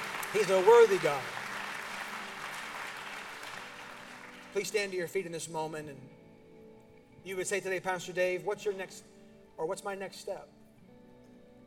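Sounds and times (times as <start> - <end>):
church congregation clapping hands in praise: 0.0 - 5.2
speech: 0.3 - 1.4, 4.5 - 6.2, 7.2 - 10.6.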